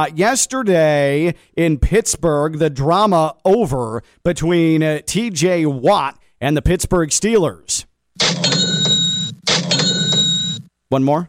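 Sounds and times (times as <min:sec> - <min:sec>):
speech: 0:00.0 - 0:09.0, 0:10.9 - 0:11.2
cash register sound effect with chime and clattering drawer: 0:08.2 - 0:10.6.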